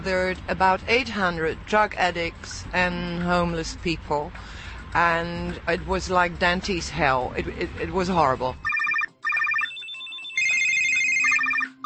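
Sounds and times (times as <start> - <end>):
speech: 0.0 - 8.7
mobile phone ringtone: 8.6 - 11.8.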